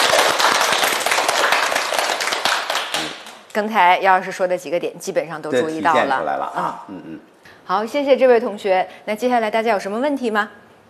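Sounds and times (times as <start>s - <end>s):
room full of people clapping like a class applauding: 0.0s - 3.6s
speech: 3.6s - 10.6s.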